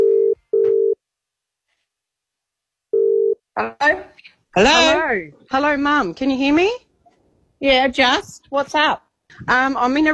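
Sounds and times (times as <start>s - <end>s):
telephone ringing tone while a call is placed: 0.0s - 1.0s, 3.0s - 3.4s
speech: 3.6s - 6.8s, 7.6s - 10.1s.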